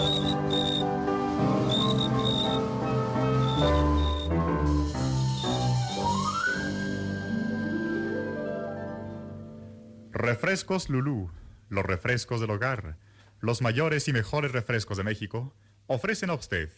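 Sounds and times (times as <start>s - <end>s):
high-pitched cricket-like chirps from an instrument: 0.0s - 0.8s, 1.7s - 2.6s, 3.4s - 4.3s
full orchestral tune: 0.0s - 10.0s
speech: 10.4s - 16.7s.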